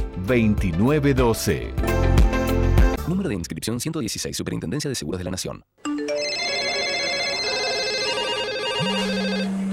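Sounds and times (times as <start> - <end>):
speech: 0.3 - 2.0, 3.1 - 6.1
telephone ringing with trilling electronic tone: 5.9 - 9.7.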